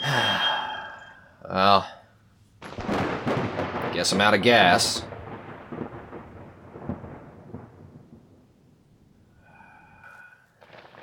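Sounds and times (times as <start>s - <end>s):
brief tonal chime: 0.0s - 1.7s
speech: 1.4s - 2.0s, 4.0s - 5.1s
steady rain pouring: 2.7s - 8.0s, 10.6s - 11.0s.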